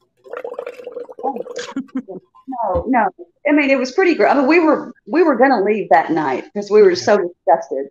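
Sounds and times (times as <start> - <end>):
person imitating the bubbling of a meth lab: 0.4 - 2.9
speech: 1.3 - 7.8.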